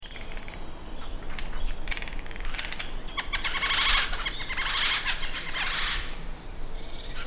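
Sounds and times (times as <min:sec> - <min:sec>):
Eurasian jay Garrulus glandarius uttering rough grating screeches: 0:01.5 - 0:06.2.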